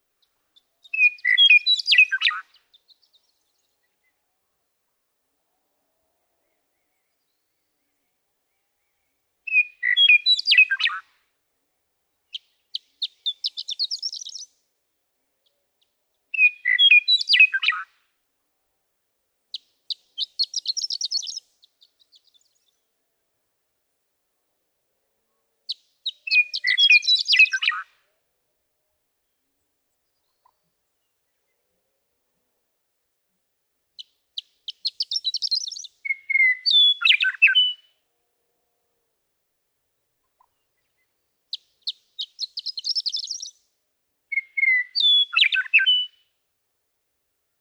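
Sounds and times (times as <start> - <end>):
Western Meadowlark singing: 0.6 - 3.3, 8.8 - 11.0, 12.3 - 14.6, 16.3 - 17.8, 19.5 - 22.8, 25.7 - 27.8, 34.0 - 37.9, 40.8 - 43.6, 44.3 - 46.2.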